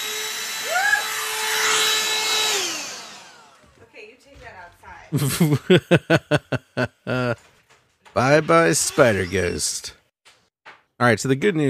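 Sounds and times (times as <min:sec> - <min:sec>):
vacuum cleaner running: 0:00.0 - 0:03.9
speech: 0:05.1 - 0:06.9, 0:08.2 - 0:10.0, 0:11.0 - 0:11.6
laughter: 0:05.1 - 0:07.5.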